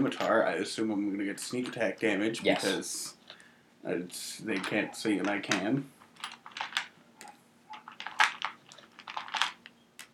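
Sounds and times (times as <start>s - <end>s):
speech: 0.0s - 3.2s, 3.8s - 6.3s
handful of dice scooped up and rolled for a tabletop role-playing game: 5.5s - 6.9s, 7.7s - 10.1s.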